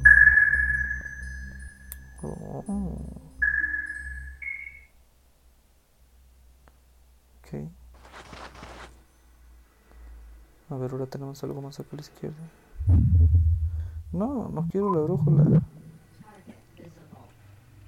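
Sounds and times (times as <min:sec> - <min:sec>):
low hum: 0:00.0 - 0:04.9, 0:12.7 - 0:16.3
high electronic sonar ping with echo: 0:00.0 - 0:05.0, 0:12.8 - 0:14.1
speech: 0:02.2 - 0:03.3, 0:07.5 - 0:07.8, 0:10.7 - 0:13.5, 0:14.1 - 0:15.7.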